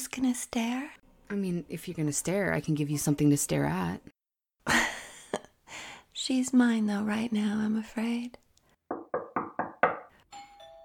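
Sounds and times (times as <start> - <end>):
speech: 0.1 - 4.8, 6.2 - 8.4
doorbell ringing at a front door: 10.3 - 10.8.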